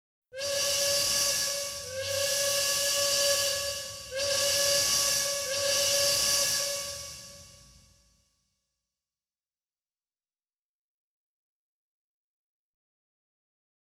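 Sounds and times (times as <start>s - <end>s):
train whistle: 0.3s - 8.2s.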